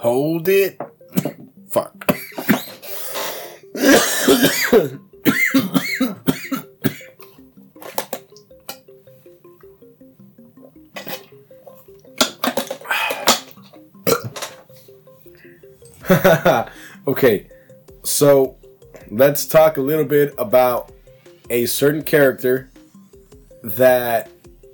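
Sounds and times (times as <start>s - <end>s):
speech: 0.0s - 2.0s, 3.9s - 5.7s, 16.1s - 20.9s, 21.5s - 22.7s, 23.6s - 24.3s
harsh fit of coughing after taking a hit: 1.1s - 1.5s, 2.1s - 7.3s, 12.8s - 14.4s
throat clearing: 1.1s - 1.5s, 3.8s - 7.2s, 14.1s - 14.4s.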